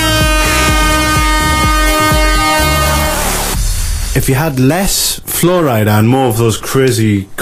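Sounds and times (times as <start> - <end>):
air horn blaring: 0.0 - 3.7
thumping rhythmic music beat: 0.0 - 4.8
speech: 4.2 - 7.3.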